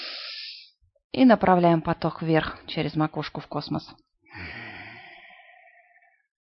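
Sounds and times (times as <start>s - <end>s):
deep breath during a guided breathing exercise: 0.0s - 0.7s, 4.3s - 6.3s
speech: 1.1s - 4.6s.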